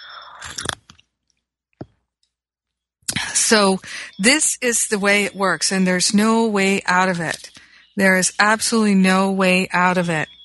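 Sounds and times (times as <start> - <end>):
sipping tea: 0.2 - 1.5
speech: 3.5 - 10.3.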